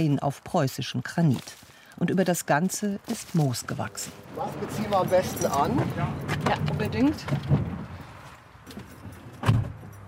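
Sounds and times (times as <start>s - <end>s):
speech: 0.0s - 7.6s
bus engine rumble heard from inside: 3.4s - 10.0s.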